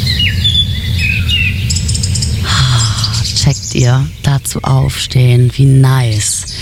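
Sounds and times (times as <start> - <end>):
birds chirping and tweeting: 0.0 - 6.5
steady low rumble: 0.0 - 6.5
speech: 3.8 - 6.5.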